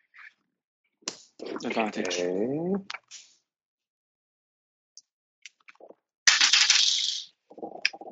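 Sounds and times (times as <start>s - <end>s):
speech: 1.6s - 3.3s
dice rattling in a tabletop game stealth roll: 6.3s - 7.3s.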